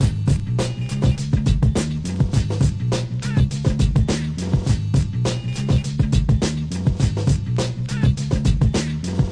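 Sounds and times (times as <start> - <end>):
funk music: 0.0 - 9.3.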